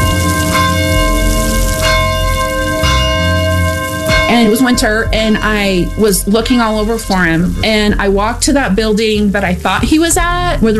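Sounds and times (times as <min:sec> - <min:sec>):
large cathedral bells tolling in the rain: 0:00.0 - 0:08.6
speech: 0:04.4 - 0:10.7.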